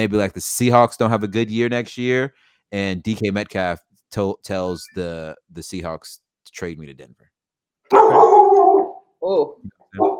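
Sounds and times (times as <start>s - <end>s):
speech: 0.0s - 7.3s, 9.2s - 10.1s
dog barking: 7.9s - 9.0s, 10.0s - 10.1s.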